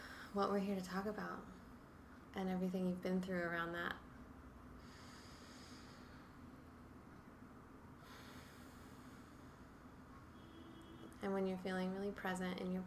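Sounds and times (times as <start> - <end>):
faint hiss: 0.0 - 12.8
speech: 0.3 - 1.6, 2.3 - 4.1, 11.2 - 12.8
slow deep breathing: 4.8 - 6.6, 8.0 - 9.8.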